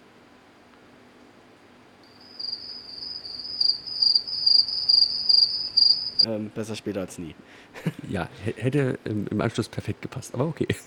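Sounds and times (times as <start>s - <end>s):
cricket chirps played from a soundboard: 2.1s - 6.3s
speech: 6.2s - 10.8s
laughter: 7.8s - 8.1s, 10.6s - 10.8s.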